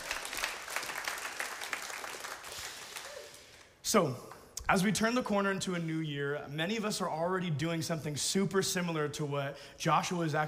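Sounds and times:
audience applause: 0:00.0 - 0:03.7
speech: 0:03.9 - 0:10.4.

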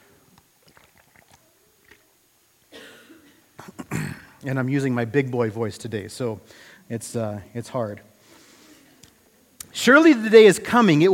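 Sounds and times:
faint clicks and mouth noises: 0:00.3 - 0:02.1, 0:08.9 - 0:09.8
person with a lingering cough coughing: 0:02.7 - 0:04.4
speech: 0:03.7 - 0:08.1, 0:09.8 - 0:11.1.

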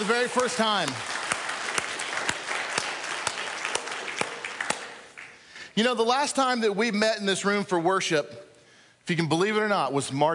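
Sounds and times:
sharp loud claps: 0:00.0 - 0:05.4
church audience applauding at a worship service: 0:00.0 - 0:05.6
speech: 0:00.1 - 0:01.2, 0:05.8 - 0:08.4, 0:09.1 - 0:10.3.

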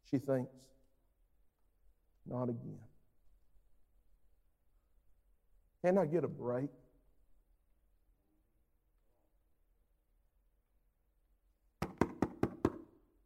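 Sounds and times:
speech: 0:00.1 - 0:00.8, 0:02.3 - 0:02.9, 0:05.8 - 0:06.8
urgent knocking on a door: 0:11.8 - 0:12.9.

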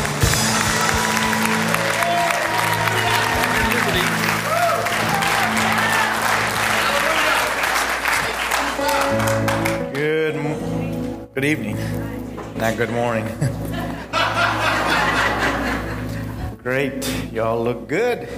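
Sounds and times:
large church audience clapping to welcome a preacher: 0:00.0 - 0:10.2
speech: 0:11.4 - 0:12.0, 0:12.6 - 0:13.6, 0:16.7 - 0:18.3
laughter: 0:13.1 - 0:16.6.

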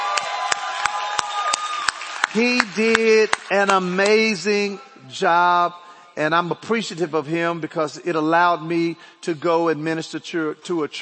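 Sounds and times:
church audience applauding a pastor: 0:00.0 - 0:04.5
speech: 0:02.3 - 0:11.0.

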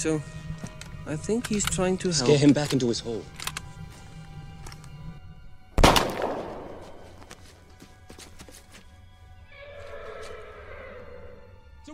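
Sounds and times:
speech: 0:00.0 - 0:00.4, 0:01.0 - 0:03.4
sharp crack: 0:05.8 - 0:07.2
horse whinnying: 0:09.4 - 0:11.5.

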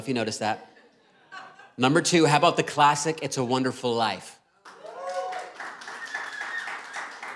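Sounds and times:
speech: 0:00.0 - 0:00.8, 0:01.8 - 0:04.4
crowd clapping: 0:04.6 - 0:07.3.

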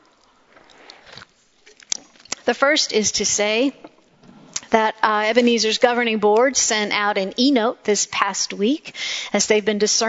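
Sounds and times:
faint swallow: 0:00.0 - 0:02.4
pastor sipping water: 0:00.0 - 0:02.5
speech: 0:02.5 - 0:03.8, 0:04.7 - 0:10.0.

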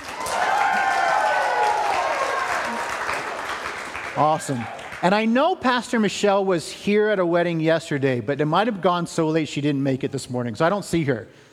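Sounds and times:
whoops and cheers: 0:00.0 - 0:03.3
room full of people applauding: 0:00.0 - 0:05.4
speech: 0:04.2 - 0:11.5.

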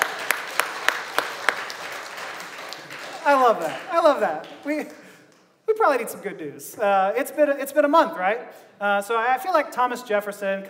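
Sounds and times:
one pair of hands clapping: 0:00.0 - 0:05.6
speech: 0:03.2 - 0:05.0, 0:05.7 - 0:10.6.

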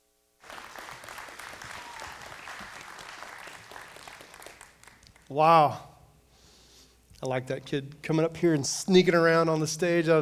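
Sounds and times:
crowd applauding: 0:00.4 - 0:05.3
speech: 0:05.3 - 0:05.9, 0:07.2 - 0:10.2.

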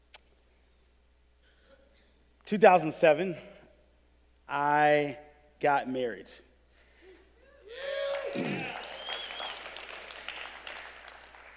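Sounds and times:
speech: 0:02.5 - 0:03.5, 0:04.5 - 0:06.5
audience applauding in a large room: 0:07.7 - 0:11.5.

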